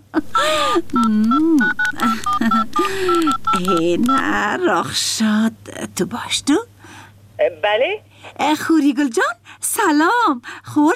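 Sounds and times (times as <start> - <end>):
speech: 0.1 - 6.7, 7.4 - 10.9
telephone dialing tones: 0.6 - 4.6.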